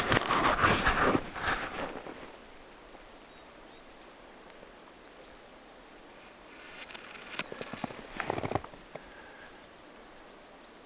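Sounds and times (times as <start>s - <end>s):
broad rustling noise: 0.0s - 2.5s, 6.2s - 9.2s
Eurasian treecreeper calls, apparently eastern subspecies: 1.0s - 10.8s.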